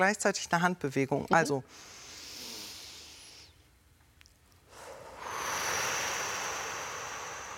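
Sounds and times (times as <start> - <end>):
speech: 0.0 - 2.0
slow deep breath through the nose: 1.7 - 3.5, 4.7 - 7.5
long steady exhale through pursed lips: 1.7 - 3.6, 4.7 - 7.5.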